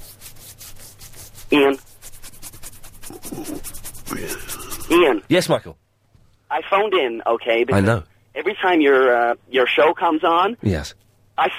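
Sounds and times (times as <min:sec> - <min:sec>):
hand rubbing a bristly chin: 0:00.0 - 0:05.2
speech: 0:01.5 - 0:01.8, 0:05.0 - 0:05.8, 0:06.5 - 0:11.5.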